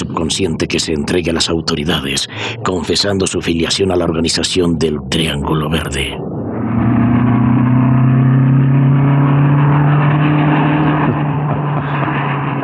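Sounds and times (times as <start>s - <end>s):
broadband road rumble: 0.0s - 12.6s
car engine humming as the vehicle drives off: 0.0s - 12.6s
speech: 0.2s - 6.2s.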